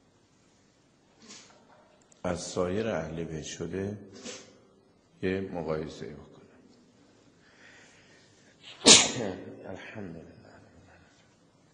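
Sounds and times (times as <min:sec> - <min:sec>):
speech: 0:02.2 - 0:04.4, 0:05.2 - 0:06.3, 0:09.2 - 0:10.4
person sneezing: 0:04.2 - 0:04.6, 0:08.6 - 0:09.4.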